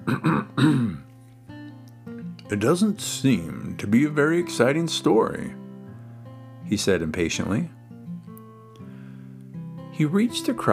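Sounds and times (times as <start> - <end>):
loud cough: 0.0 - 1.0
speech: 0.1 - 1.0, 2.5 - 5.6, 6.7 - 7.8, 10.0 - 10.7.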